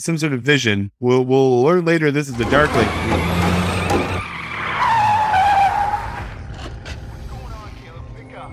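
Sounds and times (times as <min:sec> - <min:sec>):
speech: 0:00.0 - 0:03.5
sports car tires skidding and squealing: 0:02.3 - 0:07.2
sports car engine rumbling: 0:02.3 - 0:08.4
road noise: 0:02.3 - 0:08.5.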